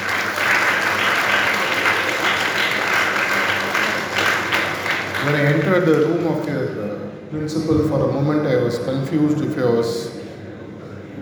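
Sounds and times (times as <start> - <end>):
student audience applause at an institute talk: 0.0 - 6.1
speech: 5.2 - 10.2.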